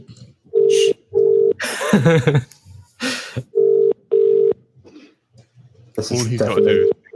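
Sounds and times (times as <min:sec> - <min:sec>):
outgoing phone call electronic ring tones: 0:00.5 - 0:01.6, 0:03.6 - 0:04.6, 0:06.4 - 0:07.1
laughter: 0:01.6 - 0:02.6
speech: 0:02.0 - 0:02.6, 0:06.0 - 0:07.0.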